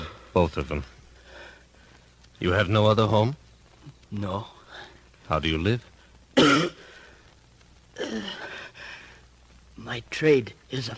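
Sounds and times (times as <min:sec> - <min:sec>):
speech: 0:00.4 - 0:01.0, 0:02.4 - 0:04.6, 0:05.3 - 0:06.9, 0:08.1 - 0:08.5, 0:09.8 - 0:10.9
harsh raspy coughs: 0:06.4 - 0:06.9.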